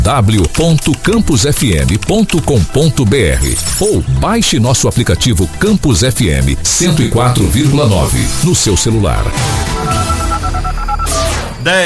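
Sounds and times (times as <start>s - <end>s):
loud dense bed: 0.0s - 11.8s
speech: 0.1s - 11.8s
telephone ringing on a radio call-in show: 8.5s - 11.8s.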